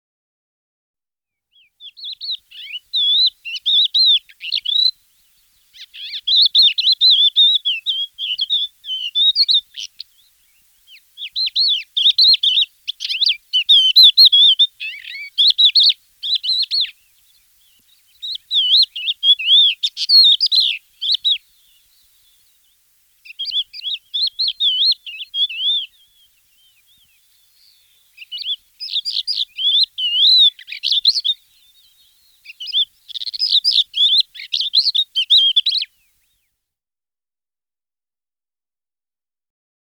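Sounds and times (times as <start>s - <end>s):
crested lark singing: 1.5s - 36.5s.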